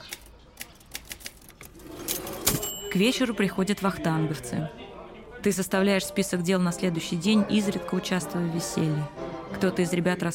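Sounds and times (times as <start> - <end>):
typewriter keys clacking: 0.0 - 2.8
typewriter bell ding: 2.0 - 3.3
speech: 3.0 - 4.8, 5.4 - 10.3.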